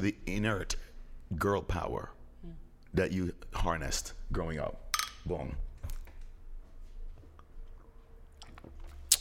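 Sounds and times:
speech: 0.0 - 5.7
low hum: 0.0 - 9.1
person sipping non-alcoholic beer: 7.3 - 9.1
soft wet smacks: 8.4 - 9.1.

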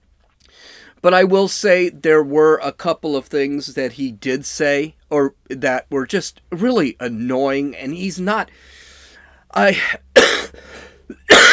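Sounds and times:
speech: 1.0 - 8.8, 9.5 - 10.0
person coughing during a speech: 9.8 - 11.5
throat clearing: 9.8 - 11.5.

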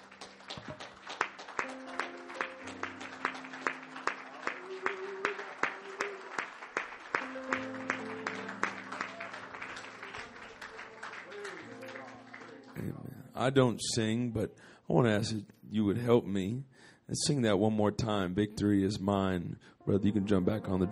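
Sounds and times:
crowd clapping in a steady even rhythm: 0.0 - 13.1
sustained keyboard or organ chords: 0.0 - 15.4, 18.0 - 20.8
speech: 13.4 - 20.8.

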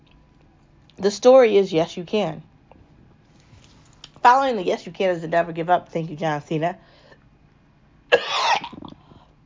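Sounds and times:
speech: 1.0 - 2.5, 4.2 - 7.0
person coughing harshly: 8.1 - 8.9.

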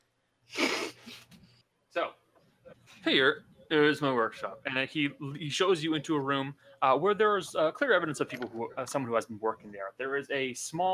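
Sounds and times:
person sneezing: 0.6 - 1.3
speech: 2.0 - 2.2, 3.1 - 10.9.

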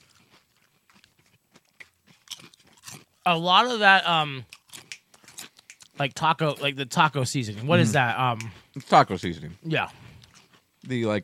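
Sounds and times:
kettle-cooked potato chips crunching in bites and chews: 0.0 - 3.7, 4.4 - 6.0, 10.1 - 10.7
speech: 3.2 - 4.5, 6.0 - 10.0, 10.8 - 11.2.

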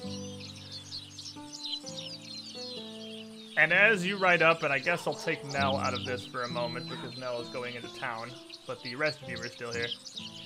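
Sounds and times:
birds chirping in a palace front yard: 0.0 - 10.4
soft melodic tone changing pitch in steps: 1.1 - 10.4
speech: 3.6 - 10.3.

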